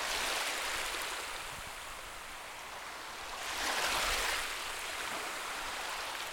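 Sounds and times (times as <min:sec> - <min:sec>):
gentle Mediterranean Sea waves near Monte-Carlo at dusk: 0:00.0 - 0:06.3.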